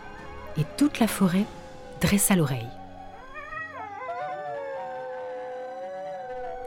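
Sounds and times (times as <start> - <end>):
speech: 0.6 - 2.8
wolves howling in a chorus: 2.8 - 6.6.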